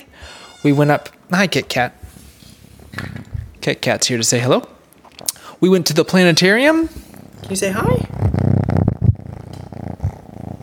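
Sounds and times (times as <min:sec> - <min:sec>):
speech: 0:00.6 - 0:02.0, 0:03.6 - 0:04.8, 0:05.6 - 0:08.2
cat purring: 0:06.7 - 0:10.6.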